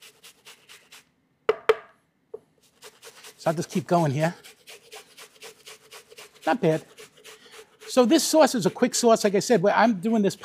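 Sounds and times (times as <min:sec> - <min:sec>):
onion being grated by hand: 0:00.0 - 0:01.1, 0:02.6 - 0:10.4
sharp knocks: 0:01.5 - 0:02.0
speech: 0:03.4 - 0:04.4, 0:06.4 - 0:06.9, 0:07.9 - 0:10.4.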